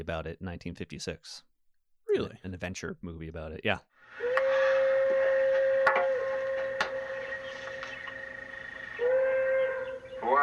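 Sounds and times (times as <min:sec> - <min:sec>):
speech: 0:00.0 - 0:01.5, 0:02.1 - 0:04.3, 0:10.2 - 0:10.4
steam locomotive whistle on an express train: 0:04.1 - 0:07.6.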